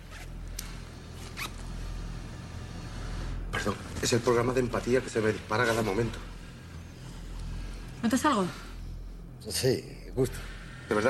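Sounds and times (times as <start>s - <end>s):
steady low hum: 0.0s - 11.0s
zipper being pulled down: 0.1s - 0.3s, 1.2s - 1.7s
speech: 3.6s - 6.3s, 8.0s - 8.6s, 9.4s - 11.0s.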